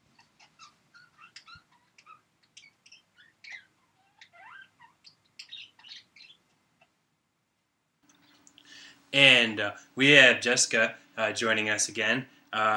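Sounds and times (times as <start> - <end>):
chorus of birds chirping: 0.0 - 7.0
steady noise: 0.0 - 12.7
speech: 9.1 - 12.7.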